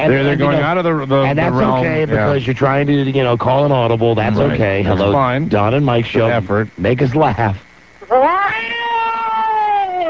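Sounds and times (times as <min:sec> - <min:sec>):
speech: 0:00.0 - 0:08.3
person imitating a cat meowing: 0:08.2 - 0:10.0.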